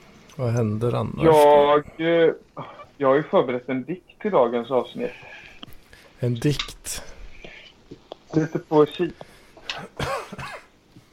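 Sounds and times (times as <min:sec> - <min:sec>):
speech: 0:00.4 - 0:05.4, 0:06.2 - 0:07.1, 0:08.3 - 0:10.5
rough rasping congested coughs: 0:09.6 - 0:10.8.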